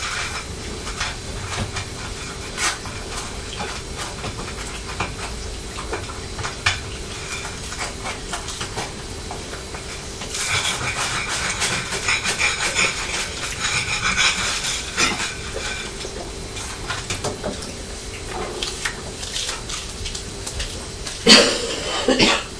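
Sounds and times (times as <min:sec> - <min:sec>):
kitchen clatter: 0:00.0 - 0:19.9
stirring: 0:00.0 - 0:21.3
mother coughing: 0:21.2 - 0:22.5.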